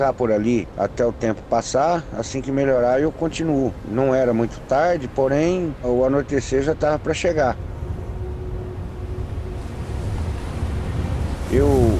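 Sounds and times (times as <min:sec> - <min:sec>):
speech: 0:00.0 - 0:07.7
ocean surf churning at an island: 0:00.0 - 0:11.9
strong gusty wind buffeting the microphone: 0:02.8 - 0:11.9.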